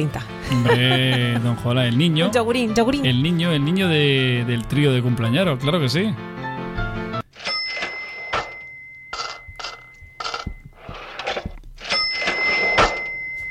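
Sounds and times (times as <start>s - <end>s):
speech: 0.0s - 6.4s
laughter: 0.4s - 1.9s
cash register bell ringing: 7.2s - 13.4s.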